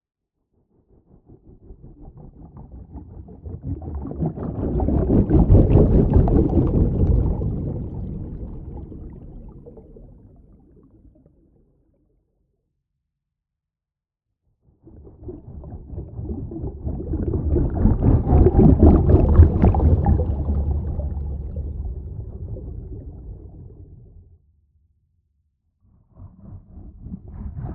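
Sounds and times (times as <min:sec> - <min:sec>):
designed underwater propeller whoosh: 0:03.5 - 0:10.6, 0:15.1 - 0:24.2.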